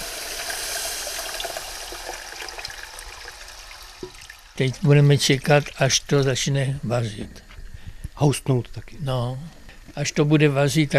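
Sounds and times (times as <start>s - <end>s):
water poured into hot flour and butter roux in a pot: 0.0s - 4.9s
speech: 4.6s - 7.5s, 8.2s - 10.9s.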